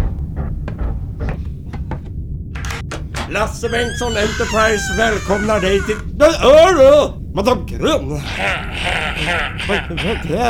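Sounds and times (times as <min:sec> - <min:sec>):
louder brighter door rattle: 0:00.0 - 0:06.1
steady low hum: 0:00.0 - 0:10.4
door being opened with light clicks and knocks: 0:00.8 - 0:06.0
speech: 0:03.3 - 0:10.4
laughter: 0:08.2 - 0:10.4.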